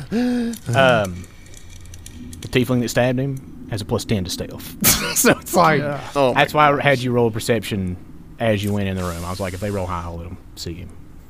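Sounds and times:
person acting out heavy panicked breathing: 0:00.0 - 0:00.7
speech: 0:00.1 - 0:01.3, 0:02.5 - 0:11.0.

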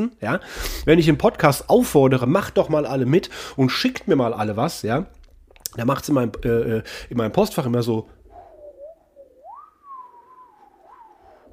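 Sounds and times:
speech: 0:00.0 - 0:08.2
voice imitating whistling wind: 0:08.2 - 0:11.5.

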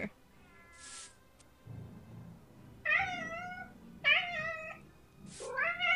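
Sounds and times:
short hissing bursts of noise: 0:00.7 - 0:01.2, 0:05.3 - 0:05.5
cat meowing with drawn-out wavering yowls: 0:02.9 - 0:04.8, 0:05.4 - 0:05.9.

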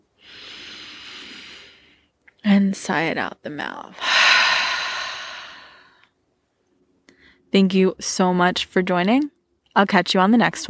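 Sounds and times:
deep cleansing inhale through the nose: 0:00.2 - 0:02.1, 0:04.0 - 0:06.0
speech: 0:02.5 - 0:04.2, 0:07.5 - 0:10.6.

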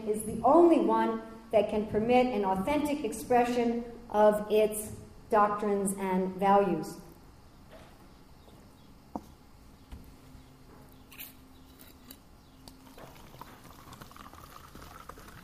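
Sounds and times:
speech: 0:00.0 - 0:07.0
person pouring water: 0:12.8 - 0:15.4.

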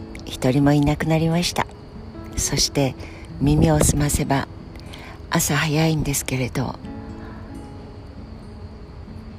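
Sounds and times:
insects chirping outdoors in Tokyo in the early morning: 0:00.0 - 0:09.3
speech: 0:00.3 - 0:01.8, 0:02.4 - 0:04.6, 0:05.3 - 0:06.9.

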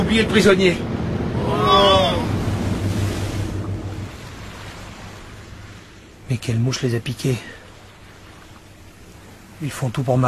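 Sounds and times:
low rumbling roar: 0:00.0 - 0:06.2
sea waves at the shore: 0:00.0 - 0:10.2
wind at the shore: 0:00.0 - 0:10.2
speech: 0:00.1 - 0:02.3, 0:06.3 - 0:07.6, 0:09.6 - 0:10.2.

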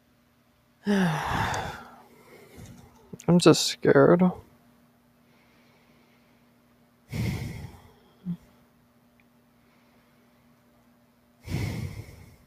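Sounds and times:
speech: 0:00.8 - 0:01.7, 0:03.3 - 0:04.4
heavy labored breaths through the mouth of a person short of breath: 0:00.8 - 0:02.9, 0:05.2 - 0:08.6, 0:11.4 - 0:12.4.

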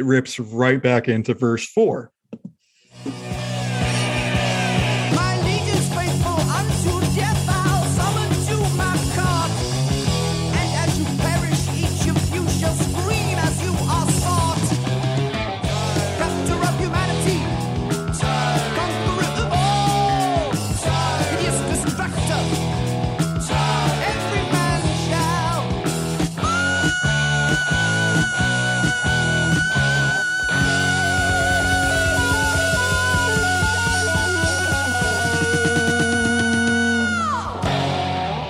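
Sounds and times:
speech: 0:00.0 - 0:03.2
loud dense rock song with pounding drums and distorted guitars: 0:03.0 - 0:38.4
long sustained vocal scream in a rock song: 0:03.2 - 0:05.7, 0:26.4 - 0:37.7.

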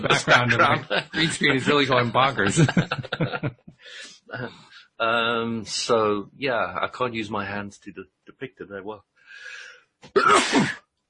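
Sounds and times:
laughter: 0:00.0 - 0:07.1
speech: 0:00.0 - 0:10.8
sneeze: 0:10.2 - 0:10.8.

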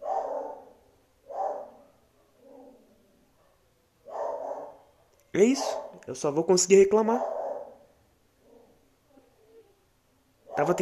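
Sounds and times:
dog barking: 0:00.0 - 0:04.9, 0:05.6 - 0:06.0, 0:07.1 - 0:08.8, 0:10.5 - 0:10.8
speech: 0:05.4 - 0:07.4.

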